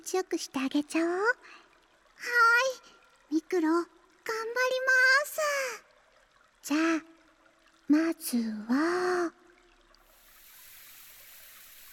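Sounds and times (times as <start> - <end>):
speech: 0.1 - 1.6, 2.2 - 5.9, 6.6 - 7.1, 7.9 - 9.4
running shower spray hissing: 10.1 - 11.9.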